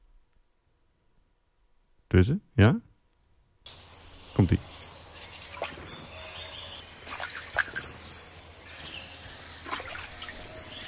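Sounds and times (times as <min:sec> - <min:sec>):
speech: 0:02.1 - 0:02.9, 0:04.4 - 0:04.7
common kingfisher shrill high-pitched calls: 0:03.7 - 0:10.8
faint bird chirps: 0:03.7 - 0:10.8
trickling water: 0:05.2 - 0:06.1, 0:06.8 - 0:08.8, 0:09.4 - 0:10.8.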